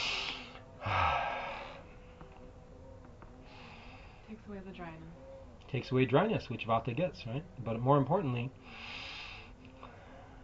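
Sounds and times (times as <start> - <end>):
breathing in through the nose after a drop of oil applied inside it: 0.0 - 1.9, 8.6 - 10.4
speech: 4.5 - 8.9.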